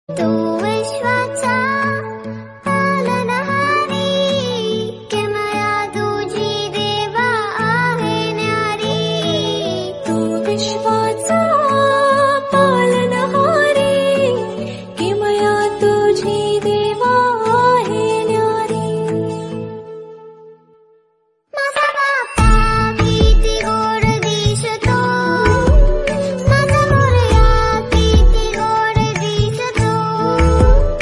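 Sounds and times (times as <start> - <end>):
bhajan devotional song ringtone: 0.1 - 20.9, 21.6 - 31.0.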